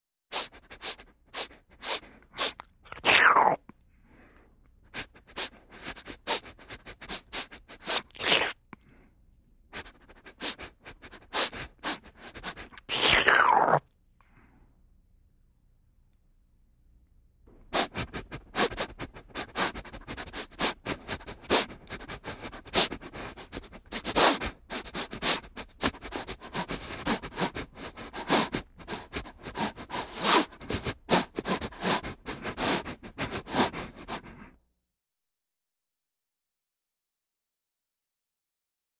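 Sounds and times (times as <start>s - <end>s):
person slurping: 0.3s - 3.6s, 5.0s - 8.6s, 9.8s - 13.8s, 17.8s - 34.4s
person smelling food: 0.3s - 9.1s, 9.8s - 14.6s, 17.7s - 34.6s.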